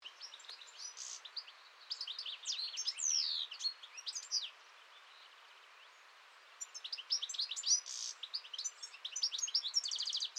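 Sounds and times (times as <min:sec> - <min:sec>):
European goldfinch song: 0:00.0 - 0:10.3.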